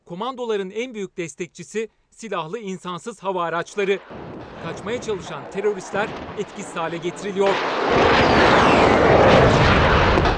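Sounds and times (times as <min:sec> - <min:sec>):
speech: 0:00.1 - 0:08.4
rocket launcher and howitzer fire: 0:03.8 - 0:10.3.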